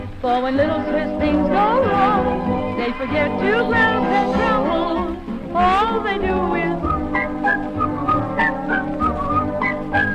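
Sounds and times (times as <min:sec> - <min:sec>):
low steady backing: 0:00.0 - 0:10.1
speech: 0:00.2 - 0:07.8
lilting Swiss-style whistled song: 0:06.5 - 0:10.1.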